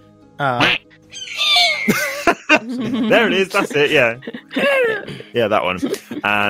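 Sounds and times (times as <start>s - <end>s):
speech: 0.4s - 0.8s, 1.8s - 6.4s
person imitating an eagle cry: 0.6s - 1.9s
laughter: 1.2s - 6.4s.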